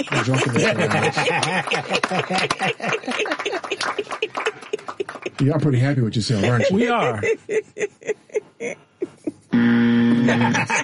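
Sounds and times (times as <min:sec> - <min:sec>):
speech: 0:00.0 - 0:08.0, 0:09.7 - 0:10.8
laughter: 0:00.0 - 0:10.8
electronic buzzer sounding from pushed button: 0:09.6 - 0:10.7.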